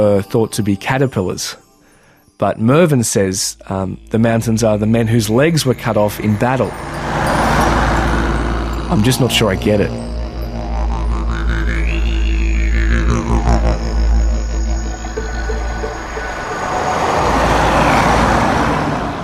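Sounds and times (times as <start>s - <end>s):
speech: 0.0s - 1.6s, 2.4s - 7.2s, 8.9s - 10.1s
low roadway rumble: 4.5s - 19.2s
passing vehicle whine: 5.0s - 19.2s
cars swishing past on a roadway: 6.0s - 10.2s, 15.2s - 19.2s.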